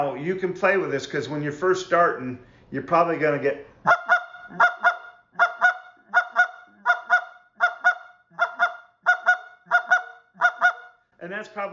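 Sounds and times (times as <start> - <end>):
speech: 0.0 - 4.7, 11.6 - 11.7
double cluck blown on a goose call: 3.8 - 11.0.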